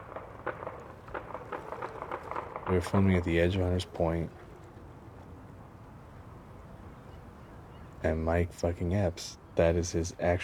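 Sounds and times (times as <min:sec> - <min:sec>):
real gunshots: 0:00.0 - 0:03.7
speech: 0:02.7 - 0:04.4, 0:08.0 - 0:10.4.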